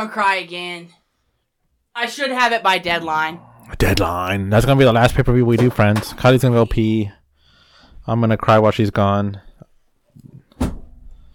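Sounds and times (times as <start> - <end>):
speech: 0.0 - 1.0, 2.0 - 7.2, 8.0 - 9.4
wooden stool toppling and clattering: 5.5 - 6.4.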